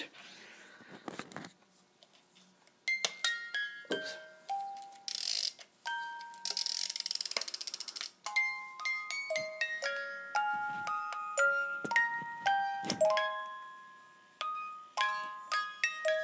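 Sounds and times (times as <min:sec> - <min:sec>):
musical snowman ornament music-box melody playing a Christmas carol: 0:02.9 - 0:16.2.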